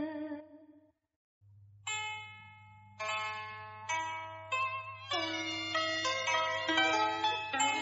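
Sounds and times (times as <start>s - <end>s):
temple bells ringing: 1.9s - 7.8s.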